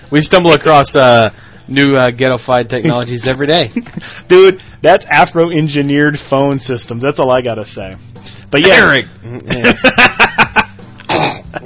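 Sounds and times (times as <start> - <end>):
speech: 0.1 - 10.3
laughter: 9.4 - 10.8
person coughing: 11.0 - 11.6
throat clearing: 11.0 - 11.6.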